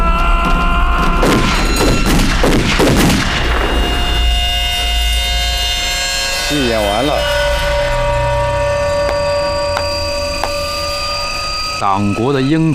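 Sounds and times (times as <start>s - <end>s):
gunshots from a firing squad execution: 1.0s - 4.6s
steady droning background: 1.2s - 12.7s
speech: 6.7s - 7.3s, 11.8s - 12.7s.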